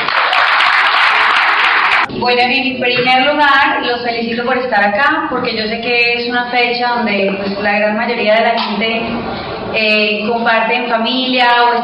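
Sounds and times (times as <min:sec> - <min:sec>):
large audience applause: 0:00.0 - 0:02.1
speech: 0:02.2 - 0:11.8.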